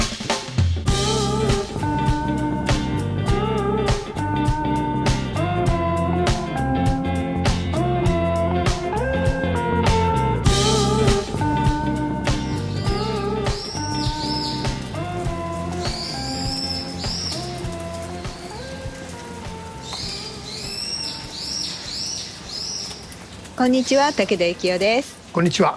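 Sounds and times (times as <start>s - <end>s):
dense continuous background music or ambience: 0.8s - 22.9s
birds chirping: 0.9s - 25.0s
speech: 23.6s - 25.7s.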